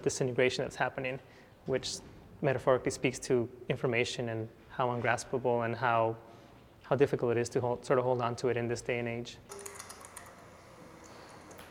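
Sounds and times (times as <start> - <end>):
speech: 0.0 - 6.3, 6.9 - 9.7
typing on a computer keyboard: 9.5 - 10.4.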